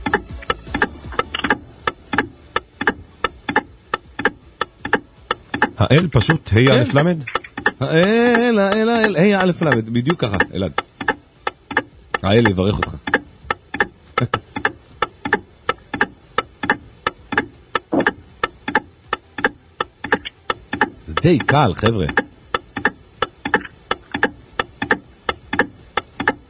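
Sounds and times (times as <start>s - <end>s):
electric clock ticking: 0.0s - 26.4s
speech: 5.8s - 10.8s, 12.2s - 13.1s, 21.2s - 22.2s.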